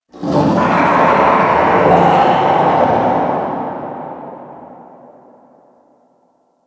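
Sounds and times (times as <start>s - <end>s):
infested distant creature snarl: 0.1s - 5.3s
ambience: 0.1s - 6.1s.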